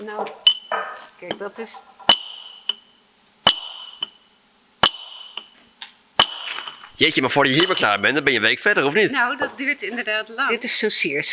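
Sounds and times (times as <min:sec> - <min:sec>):
speech: 0:00.0 - 0:00.5, 0:01.2 - 0:02.0, 0:07.0 - 0:11.3
hand hammer striking metal chisel: 0:00.5 - 0:01.4, 0:02.1 - 0:02.9, 0:03.5 - 0:04.2, 0:04.8 - 0:05.6, 0:06.2 - 0:06.8, 0:07.6 - 0:07.9.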